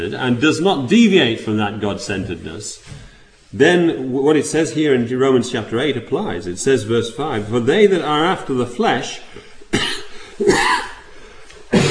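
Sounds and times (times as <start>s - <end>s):
speech: 0.0s - 9.5s
harsh throaty coughs: 9.7s - 11.1s, 11.7s - 11.9s.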